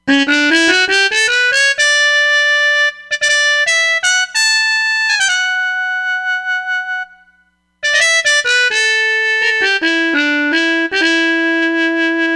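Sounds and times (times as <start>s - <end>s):
Roland Fantom XR harmon mute trumpet sound: 0.1s - 12.3s.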